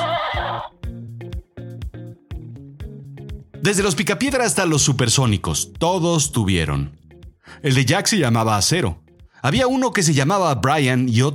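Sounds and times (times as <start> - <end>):
horse neighing: 0.0 - 0.8
speech: 3.6 - 11.3.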